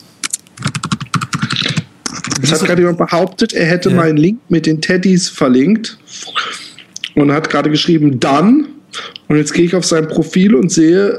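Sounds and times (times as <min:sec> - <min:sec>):
rapid typing on a computer keyboard: 0:00.3 - 0:01.8
speech: 0:02.5 - 0:11.1.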